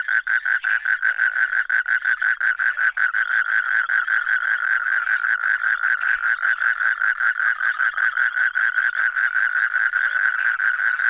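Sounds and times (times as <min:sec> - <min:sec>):
frog croaking in short raspy pulses: 0:00.0 - 0:11.0.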